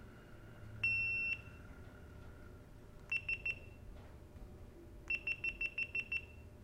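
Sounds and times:
high-pitched electronic beeping: 0.8s - 1.7s, 3.1s - 3.8s, 5.1s - 6.5s.

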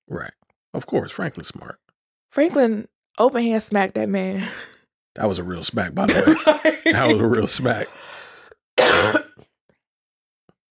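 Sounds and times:
speech: 0.1s - 8.1s
person coughing: 6.1s - 7.3s, 8.8s - 9.4s
laughter: 6.1s - 7.9s.

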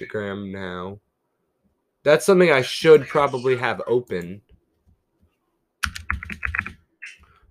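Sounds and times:
speech: 0.0s - 1.1s, 2.0s - 4.4s
typing on a computer keyboard: 5.8s - 6.8s.

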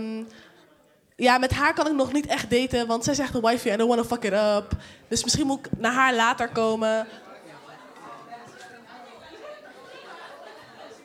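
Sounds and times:
murmur of several people chatting: 0.0s - 11.0s
speech: 1.2s - 7.2s
laughter: 7.0s - 11.0s.

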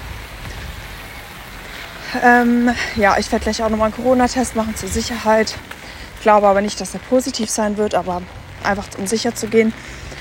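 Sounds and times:
heavy rain pouring down: 0.0s - 10.2s
speech: 2.1s - 10.1s.

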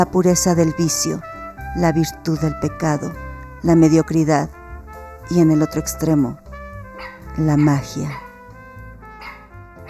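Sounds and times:
speech: 0.0s - 4.6s, 5.3s - 6.4s, 7.0s - 8.2s
small dog barking: 7.0s - 7.3s, 8.1s - 8.3s, 9.2s - 9.8s.

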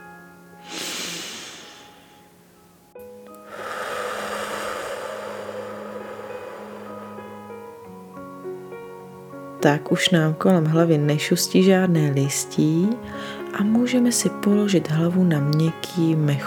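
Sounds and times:
deep breath in through the nose: 0.6s - 2.3s, 3.4s - 7.8s
long slow exhale through the mouth: 0.6s - 2.4s, 3.4s - 7.8s
speech: 9.6s - 16.4s.

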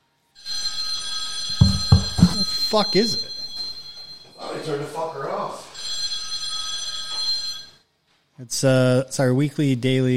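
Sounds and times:
phone ringing with an electronic trill: 0.4s - 7.8s
low thumps: 1.6s - 2.6s
speech: 2.7s - 3.3s, 4.7s - 5.6s, 8.4s - 10.1s.

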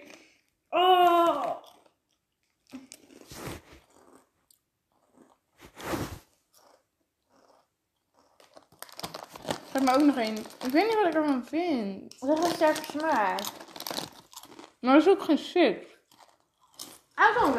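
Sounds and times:
biting and chewing Emmentaler cheese: 1.3s - 11.2s, 12.2s - 14.8s, 15.9s - 17.2s
speech: 9.8s - 13.6s, 14.8s - 15.9s, 17.3s - 17.5s.

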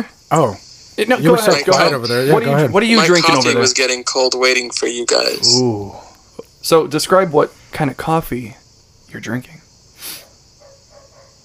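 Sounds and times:
steady low hum: 0.0s - 10.0s
speech: 0.0s - 10.2s
short hissy burst: 9.9s - 10.3s.

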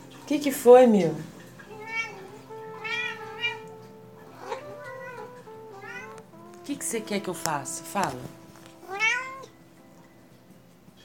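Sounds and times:
speech: 0.3s - 1.3s, 6.7s - 8.4s
cat meowing: 1.7s - 6.6s, 8.8s - 9.5s.

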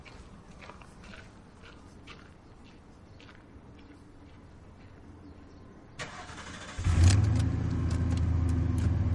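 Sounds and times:
pickup truck engine cranking and idling: 6.0s - 9.1s.

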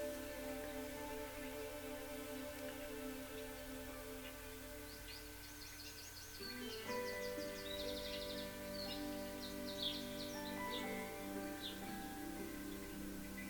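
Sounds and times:
birds chirping and twittering by a riverbank: 0.0s - 13.4s
outdoor ambience on a riverbank: 0.0s - 13.4s.

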